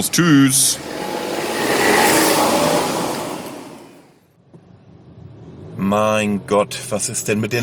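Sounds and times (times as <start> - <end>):
speech: 0.0 - 1.2, 5.9 - 7.6
car engine revving as the car pulls away: 0.0 - 4.1.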